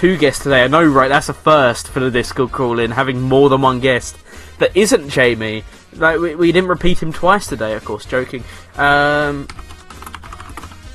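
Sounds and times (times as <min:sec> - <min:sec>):
speech: 0:00.0 - 0:09.7
rapid computer keyboard typing of a quick message: 0:09.2 - 0:10.9.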